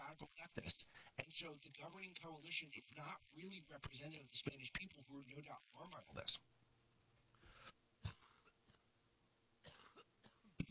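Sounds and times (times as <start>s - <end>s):
speech: 0.1s - 6.6s
sharp coughs: 8.0s - 8.4s, 9.6s - 10.6s.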